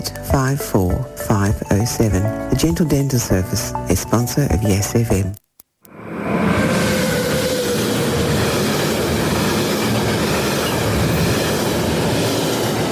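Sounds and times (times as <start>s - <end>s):
speech: 0.0s - 5.4s
train rumbling along the tracks through Yass: 5.9s - 12.9s.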